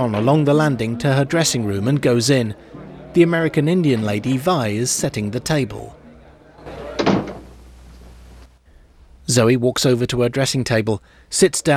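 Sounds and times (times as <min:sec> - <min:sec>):
speech: 0:00.0 - 0:06.0, 0:09.3 - 0:11.7
laughter: 0:00.0 - 0:08.5
door swinging shut with a solid thud: 0:06.6 - 0:08.2.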